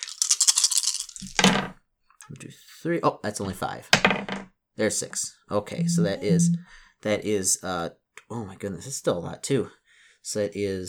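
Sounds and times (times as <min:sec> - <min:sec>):
six dice rattling as hope dice in a game: 0:00.0 - 0:01.7
speech: 0:02.3 - 0:10.8.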